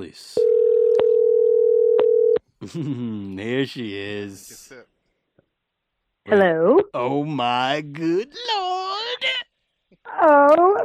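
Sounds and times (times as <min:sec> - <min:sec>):
speech: 0:00.0 - 0:00.4, 0:02.7 - 0:05.0, 0:06.3 - 0:09.4, 0:10.1 - 0:10.8
steady electronic telephone tone on an unanswered call: 0:00.4 - 0:02.4.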